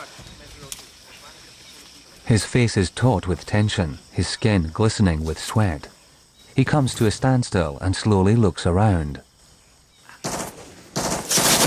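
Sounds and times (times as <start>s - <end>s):
speech: 2.3s - 6.0s, 6.6s - 9.2s
machine gun firing into a jungle: 10.2s - 11.6s.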